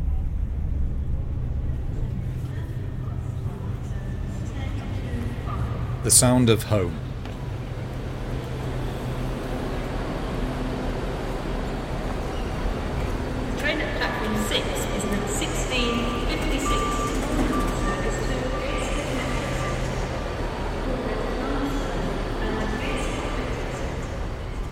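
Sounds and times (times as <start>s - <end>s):
indistinct voices: 0.0s - 7.2s, 11.8s - 24.7s
street traffic in Newcastle: 0.0s - 24.7s
train heading north rumbling along the track: 0.0s - 24.7s
speech: 6.0s - 7.0s
truck reversing alarm beeping: 14.6s - 20.5s.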